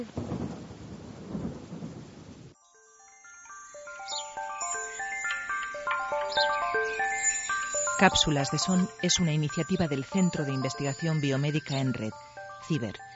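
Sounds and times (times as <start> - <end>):
speech: 0.0 - 0.3, 8.0 - 13.1
low rumble of thunder: 0.0 - 2.6
steady rain in a thunderstorm: 0.0 - 2.6
bright tinkling melody: 2.6 - 13.1.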